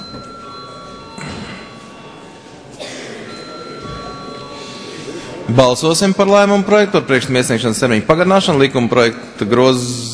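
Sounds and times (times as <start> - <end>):
room murmur: 0.0 - 5.6
parliament chamber bell ringing before a vote: 0.0 - 8.6
speech: 5.5 - 10.1.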